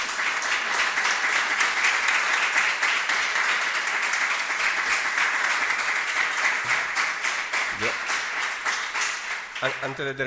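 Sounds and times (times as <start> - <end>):
large audience at a folk music festival clapping: 0.0 - 10.2.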